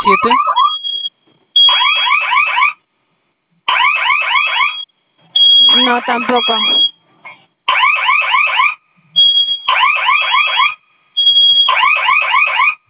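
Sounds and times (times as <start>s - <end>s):
steady security system alarm beeps: 0.0s - 2.4s, 3.9s - 7.0s, 8.6s - 12.8s
security system fire alarm warbling electronic chirps: 0.0s - 2.8s, 3.7s - 7.0s, 7.7s - 12.8s
speech: 0.1s - 0.6s, 5.9s - 6.9s.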